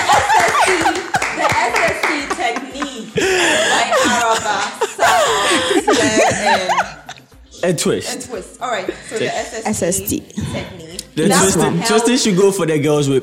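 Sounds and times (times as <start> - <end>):
crowd clapping: 0.0 - 2.7
laughter: 0.0 - 7.3
speech: 7.7 - 13.2.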